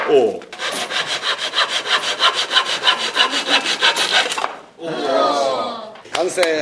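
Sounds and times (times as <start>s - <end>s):
speech: 0.1s - 0.5s, 3.3s - 6.5s
saw cutting through wood along a marked line: 0.6s - 4.6s.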